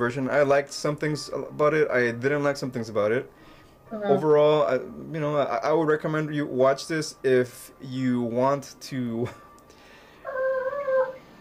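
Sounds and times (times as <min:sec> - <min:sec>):
speech: 0:00.0 - 0:09.4
dog whimpering in a high wavering whine: 0:10.3 - 0:11.2.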